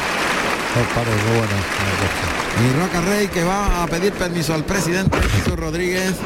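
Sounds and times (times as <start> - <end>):
large bullring crowd applauding: 0.0 - 4.1
speech: 0.7 - 6.2.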